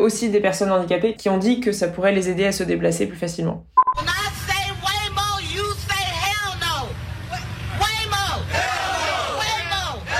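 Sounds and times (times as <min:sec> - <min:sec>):
speech: 0:00.0 - 0:04.1
low rumble of traffic: 0:04.0 - 0:10.1
protesters chanting at outdoor street demonstration against self-driving cars: 0:08.4 - 0:10.1.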